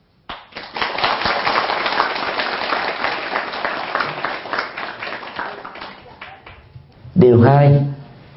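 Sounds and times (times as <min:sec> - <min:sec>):
crowd applause: 0:00.3 - 0:06.6
speech: 0:07.2 - 0:07.9.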